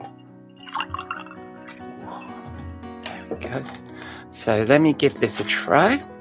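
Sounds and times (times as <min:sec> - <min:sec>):
cucumber tonic water poured into a glass: 0:00.0 - 0:01.4
speech: 0:03.4 - 0:06.1.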